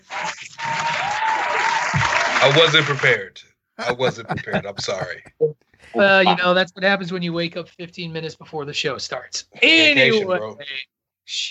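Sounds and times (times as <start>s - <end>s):
crowd applause: 0.0s - 5.2s
speech: 2.4s - 11.4s
laughter: 3.8s - 5.4s, 9.9s - 10.5s.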